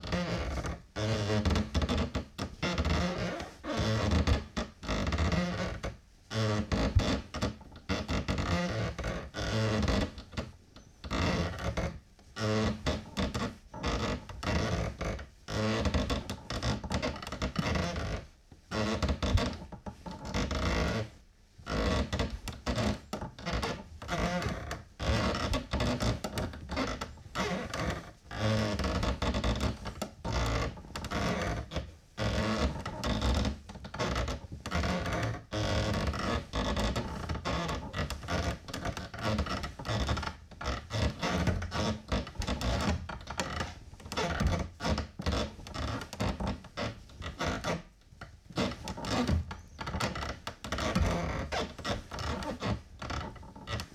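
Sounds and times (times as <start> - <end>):
wood creaking: 0.0 - 53.9.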